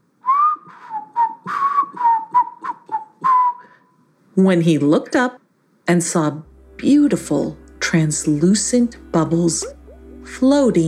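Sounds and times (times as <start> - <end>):
person whistling a tune while walking along a shoreline by tide pools: 0.2 - 3.9, 9.6 - 10.0
speech: 4.4 - 10.8.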